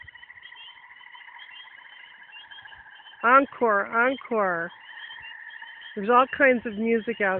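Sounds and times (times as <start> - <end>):
several tree frogs trilling at night: 0.0 - 7.3
speech: 3.2 - 4.8, 6.0 - 7.3.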